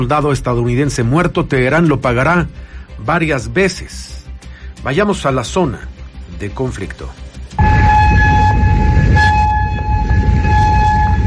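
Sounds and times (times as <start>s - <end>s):
speech: 0.0s - 4.2s, 4.8s - 7.9s
warning siren in a city: 7.6s - 11.2s.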